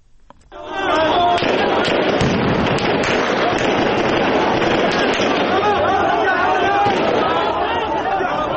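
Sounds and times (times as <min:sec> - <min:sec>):
dense crowd of protesters shouting: 0:00.5 - 0:08.5
gunfire during street clashes with protesters: 0:01.3 - 0:05.8, 0:06.8 - 0:07.5.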